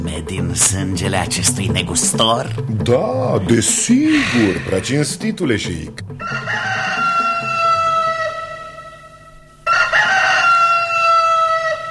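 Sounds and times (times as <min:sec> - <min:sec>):
speech: 0:00.1 - 0:06.8
roosters crowing: 0:06.2 - 0:11.8.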